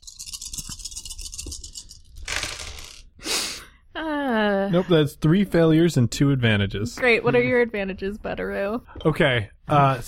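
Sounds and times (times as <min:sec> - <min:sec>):
dice rolled across a hard tabletop for a charm check: 0:00.0 - 0:03.1
speech: 0:04.0 - 0:10.0.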